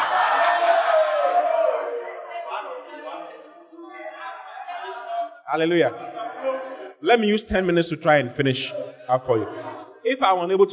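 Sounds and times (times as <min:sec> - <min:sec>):
crowd of voices calling out together: 0:00.0 - 0:03.6
people shouting: 0:00.0 - 0:05.1
scattered murmurs: 0:00.0 - 0:07.4, 0:08.2 - 0:10.7
speech: 0:05.5 - 0:06.2, 0:07.0 - 0:10.7.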